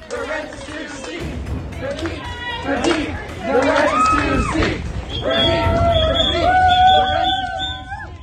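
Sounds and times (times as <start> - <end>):
crowd of student protesters chanting outside an event: 0.0 - 7.8
protesters blowing shrill sustained whistle blasts: 5.0 - 8.2.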